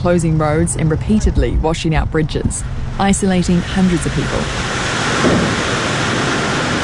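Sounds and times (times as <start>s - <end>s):
speech: 0.0s - 5.6s
rain falling during a storm in South Wairarapa: 3.4s - 6.8s.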